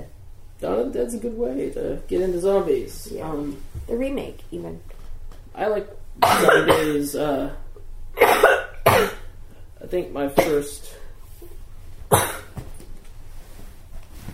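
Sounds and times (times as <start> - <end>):
speech: 0.6 - 5.0, 5.6 - 7.6, 9.8 - 11.0
sharp harsh coughs close to the microphone: 6.2 - 7.1, 8.2 - 9.3, 12.1 - 12.6.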